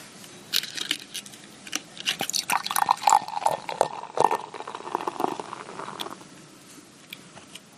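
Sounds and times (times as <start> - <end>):
beer pouring into a glass: 2.2 - 6.2.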